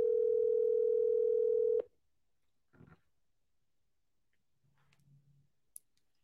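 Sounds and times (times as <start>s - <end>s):
telephone ringback tone on an outgoing call: 0.0s - 1.8s.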